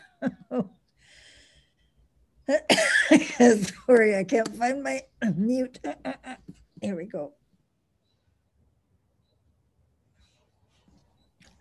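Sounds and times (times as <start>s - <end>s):
speech: 0.2s - 0.8s, 2.5s - 7.4s
soft breath: 1.0s - 2.0s
person coughing harshly: 2.6s - 3.5s.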